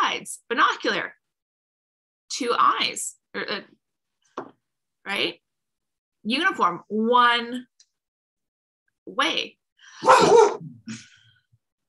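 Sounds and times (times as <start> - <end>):
speech: 0.2 - 1.2, 2.3 - 3.8, 4.4 - 5.4, 6.2 - 7.7, 9.1 - 11.1
boxer dog barking: 10.0 - 10.7.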